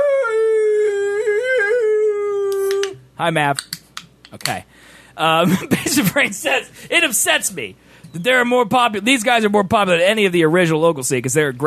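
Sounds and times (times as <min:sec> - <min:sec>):
dog howling: 0:00.0 - 0:03.0
speech: 0:03.2 - 0:11.6.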